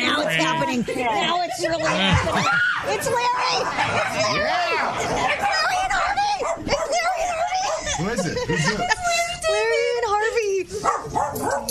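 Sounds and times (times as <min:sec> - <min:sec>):
laughter: 0:00.0 - 0:06.3, 0:06.9 - 0:10.3
speech: 0:00.7 - 0:06.7, 0:08.0 - 0:09.7
dog barking and whining during a playful scuffle with another dog: 0:01.7 - 0:02.3, 0:03.6 - 0:08.0, 0:10.8 - 0:11.6.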